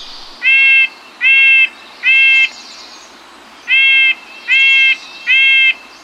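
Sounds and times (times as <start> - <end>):
Red-breasted Nuthatch giving nasal horn-like calls: 0.0 - 2.5, 3.6 - 5.8
soft steady hiss: 0.0 - 6.0.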